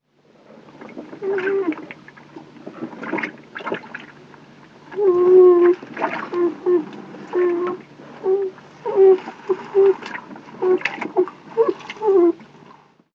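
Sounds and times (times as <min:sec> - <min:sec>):
young beaver begging: 0:05.0 - 0:12.4.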